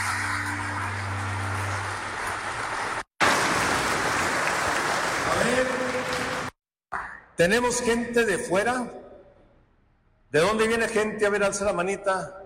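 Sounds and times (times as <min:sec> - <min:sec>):
crowd clapping: 0:00.0 - 0:06.6
speech: 0:07.4 - 0:09.0, 0:10.3 - 0:12.4.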